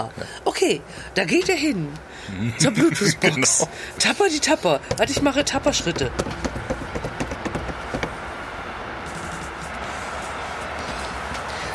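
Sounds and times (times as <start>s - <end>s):
speech: 0.0s - 6.7s
passing train rumble and rush: 0.0s - 11.7s
laughter: 2.4s - 3.8s
train wheels clacking over rail joints: 4.0s - 8.3s.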